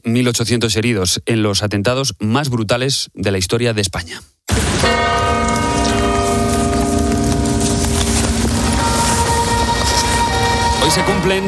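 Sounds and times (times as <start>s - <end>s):
speech: 0.0s - 5.0s, 10.9s - 11.4s
church bells pealing: 4.7s - 11.4s.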